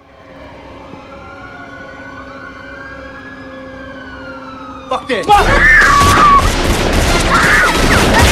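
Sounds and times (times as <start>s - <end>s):
police sirens wailing: 0.0s - 8.3s
speech: 4.9s - 6.0s
crashing noise: 5.5s - 8.3s.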